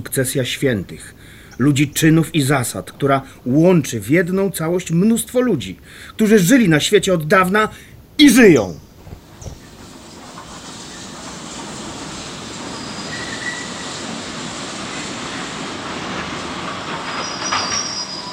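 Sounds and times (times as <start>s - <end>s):
steady train brake hiss and clatter: 0.0s - 4.9s, 8.9s - 18.3s
train rumbling along its rails: 0.0s - 5.4s, 9.2s - 18.3s
speech: 0.0s - 8.9s
train braking hard with steel wheels squealing: 9.6s - 18.3s.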